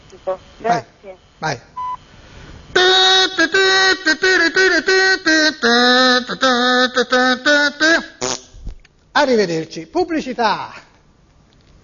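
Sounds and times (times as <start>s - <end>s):
speech: 0.1s - 1.7s, 2.8s - 8.1s, 9.2s - 10.8s
telephone answering machine electronic beep: 1.8s - 2.0s.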